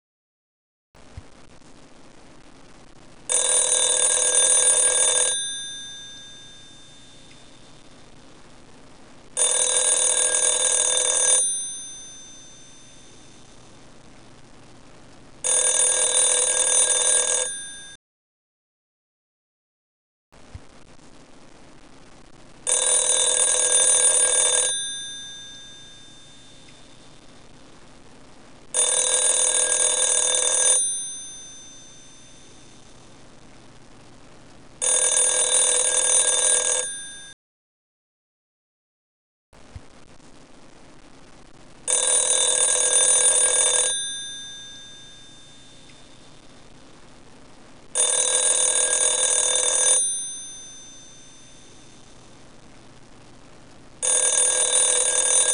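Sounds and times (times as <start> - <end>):
telephone ringing: 3.3 - 7.8, 9.4 - 13.6, 15.4 - 18.0, 22.7 - 27.3, 28.7 - 33.0, 34.8 - 37.4, 41.9 - 46.5, 48.0 - 52.2, 54.0 - 55.5.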